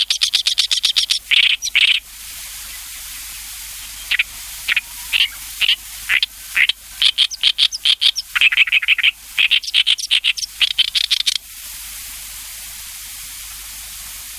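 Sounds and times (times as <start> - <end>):
Oriental reed warbler song: 0.0 - 11.4.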